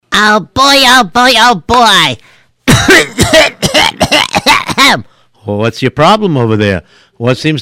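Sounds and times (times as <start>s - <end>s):
speech: 0.2s - 3.5s, 4.9s - 7.6s
harsh coughing: 2.6s - 5.1s.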